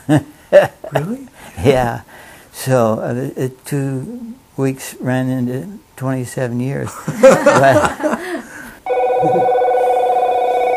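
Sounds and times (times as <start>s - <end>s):
speech: 0.1s - 8.4s, 9.2s - 9.5s
laughter: 7.0s - 8.6s
telephone with bright electronic ring: 8.9s - 10.7s.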